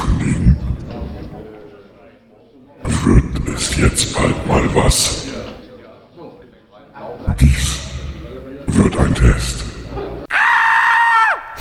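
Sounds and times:
faint noise: 0.0s - 11.5s
speech: 3.1s - 5.4s, 8.8s - 9.6s
person screaming: 10.3s - 11.5s.

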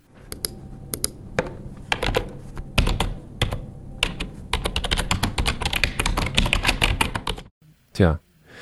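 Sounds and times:
typing on a computer keyboard: 1.9s - 7.5s
speech: 8.0s - 8.2s.

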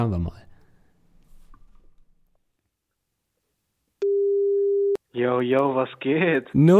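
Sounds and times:
speech: 0.0s - 0.5s, 5.2s - 6.7s
faint rustling and handling noise: 1.1s - 2.2s
phone call ringing tone while placing a call: 4.0s - 5.0s.

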